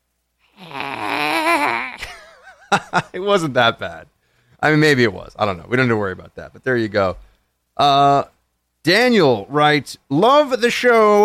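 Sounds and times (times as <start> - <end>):
person performing an exaggerated gurgling Gollum-like exhale: 0.6 - 2.0
speech: 2.7 - 11.2.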